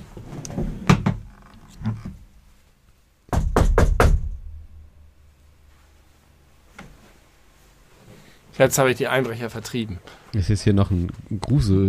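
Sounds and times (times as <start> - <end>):
knocking on a wooden door: 3.3 - 4.4
speech: 8.6 - 11.8.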